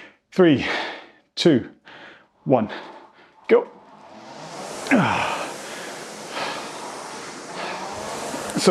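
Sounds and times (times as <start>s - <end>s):
heavy ragged gasping breaths after max-effort rowing: 0.0s - 3.5s, 4.8s - 8.4s
speech: 0.4s - 1.8s, 2.4s - 3.8s, 4.9s - 5.3s
quiet hiss: 1.9s - 8.7s.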